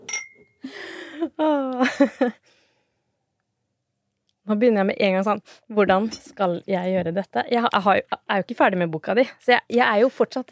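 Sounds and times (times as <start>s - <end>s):
wine glasses clinking in a toast: 0.0s - 0.6s
speech: 1.2s - 2.5s, 4.5s - 10.5s.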